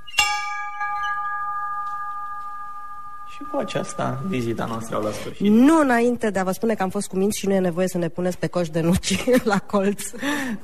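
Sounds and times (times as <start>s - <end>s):
school bell ringing for recess: 0.0s - 5.2s
speech: 3.4s - 10.6s.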